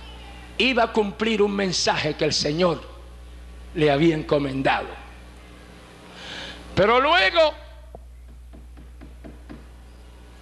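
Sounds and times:
steady low hum: 0.0 - 10.3
speech: 0.6 - 2.9, 3.7 - 5.0, 6.8 - 7.6
knocking on a door: 8.3 - 9.7.

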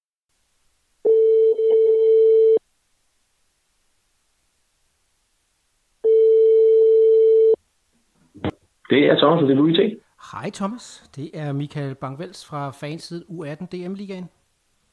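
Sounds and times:
telephone ringback tone: 1.1 - 2.6, 6.0 - 7.6
speech: 8.9 - 14.9.

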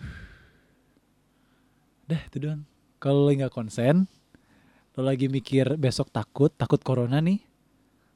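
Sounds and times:
slow exhale through the mouth during a relaxation breathing exercise: 0.0 - 0.6
speech: 2.1 - 4.2, 5.0 - 7.5.

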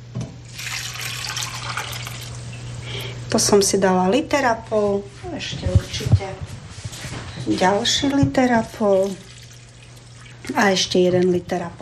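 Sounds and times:
water pouring into a cooking pot: 0.5 - 2.5, 8.9 - 10.8
speech: 3.3 - 6.5, 7.4 - 9.3, 10.5 - 11.8.

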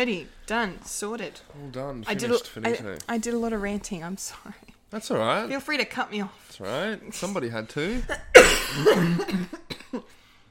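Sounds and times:
speech: 0.0 - 10.2
person coughing harshly: 8.0 - 10.1.

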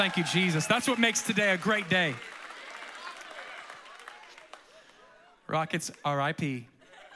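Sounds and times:
speech: 0.0 - 2.4, 5.5 - 6.7
audience clapping: 0.0 - 5.1
scattered crowd voices and cheers: 0.0 - 5.5.

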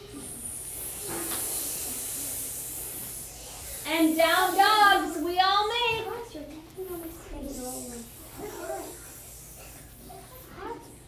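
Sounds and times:
person making a hissing sound imitating a snake: 0.0 - 5.2, 7.4 - 11.0
speech: 3.9 - 5.1.

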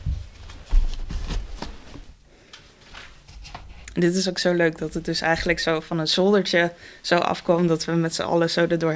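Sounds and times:
paper posters rustling and crinkling as taken from boxes and shuffled: 0.0 - 3.8
speech: 4.0 - 8.9.

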